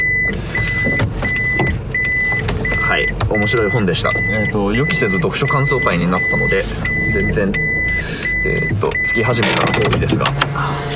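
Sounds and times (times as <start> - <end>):
clunks: 0.0 - 4.5, 6.2 - 10.7
car engine rumbling while being parked into a garage: 0.0 - 10.9
speech: 3.3 - 10.9
high electronic tone: 4.2 - 10.0.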